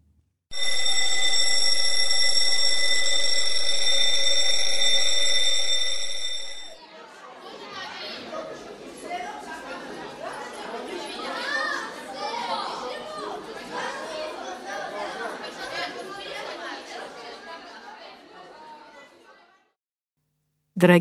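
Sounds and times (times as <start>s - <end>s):
electric school bell ringing: 0.5s - 6.8s
crowd of children chattering: 6.8s - 19.4s.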